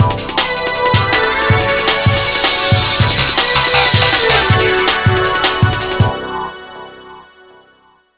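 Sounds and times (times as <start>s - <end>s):
drum and bass music: 0.0s - 7.8s.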